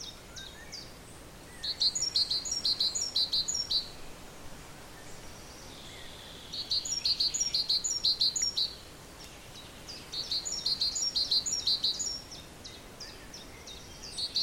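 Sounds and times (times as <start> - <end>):
soft background hiss: 0.0 - 14.4
great tit Parus major singing two-note phrases: 1.6 - 4.0, 5.6 - 8.8, 9.5 - 14.4.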